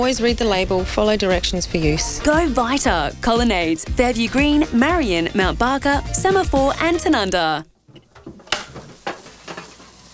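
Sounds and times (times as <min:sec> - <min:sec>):
speech: 0:00.0 - 0:07.7
kettle heating water: 0:07.8 - 0:10.1.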